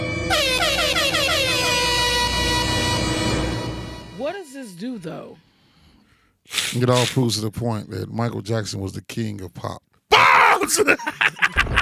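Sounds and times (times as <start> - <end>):
air horn blaring with wavering pitch: 0.0 - 5.1
speech: 4.7 - 5.5, 6.4 - 9.9, 10.6 - 11.8
laughter: 10.6 - 11.8.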